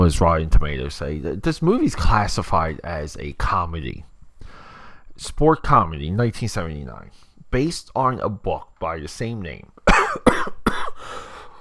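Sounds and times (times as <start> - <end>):
speech: 0.0 - 4.1, 5.2 - 11.2
person coughing: 9.9 - 11.2.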